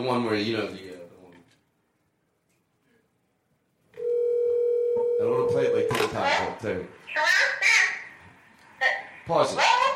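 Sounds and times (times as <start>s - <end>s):
speech: 0.0s - 0.9s, 5.2s - 7.8s, 8.8s - 9.9s
steady telephone line tone: 4.0s - 6.0s.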